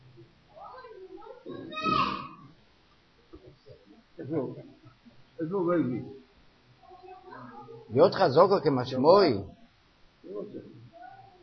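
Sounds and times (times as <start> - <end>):
children chattering in the background: 0.5 - 2.6, 6.8 - 7.9, 10.8 - 11.4
speech: 4.3 - 4.7, 5.4 - 6.2, 7.9 - 9.6.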